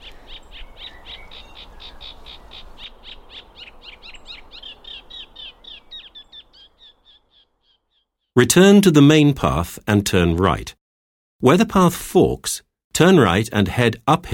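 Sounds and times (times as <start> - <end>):
reed or sedge warbler singing rapid scratchy chattering notes: 0.0 - 8.1
speech: 8.4 - 10.8, 11.4 - 14.3.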